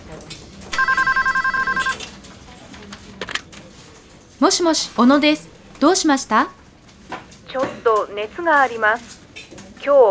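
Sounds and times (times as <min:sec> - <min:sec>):
electronic telephone trilling in an office: 0:00.7 - 0:02.1, 0:04.4 - 0:06.6
speech: 0:04.4 - 0:06.6, 0:07.9 - 0:09.2, 0:09.8 - 0:10.0.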